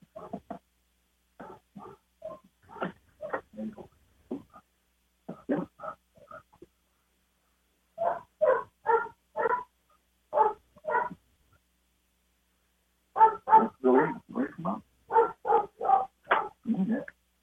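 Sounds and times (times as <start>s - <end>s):
household dog barking in a room: 0.1s - 0.4s, 1.4s - 3.4s, 8.0s - 11.2s, 13.2s - 14.2s, 15.1s - 16.7s.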